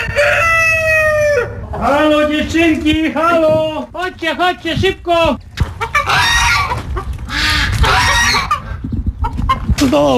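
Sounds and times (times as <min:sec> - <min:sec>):
hens clucking and squawking: 0:00.0 - 0:03.8, 0:05.4 - 0:09.9
speech: 0:01.8 - 0:05.5, 0:09.9 - 0:10.1.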